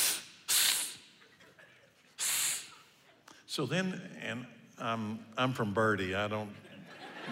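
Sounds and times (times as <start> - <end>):
person imitating a man hissing: 0.0 - 1.2, 2.2 - 3.0
speech: 3.5 - 6.7.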